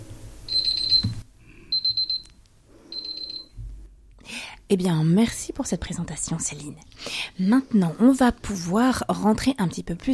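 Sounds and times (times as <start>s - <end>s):
alarm beeping to mark the end of the allotted speaking time: 0.5s - 2.3s, 2.9s - 3.5s
speech: 4.7s - 10.1s.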